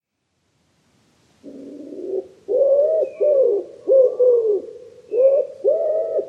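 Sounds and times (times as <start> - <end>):
wood pigeon cooing: 1.4 - 6.2.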